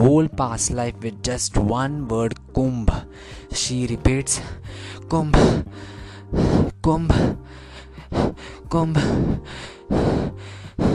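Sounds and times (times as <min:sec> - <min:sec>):
speech: 0:00.0 - 0:10.9
fast gasping breaths: 0:03.1 - 0:03.6, 0:04.3 - 0:10.9.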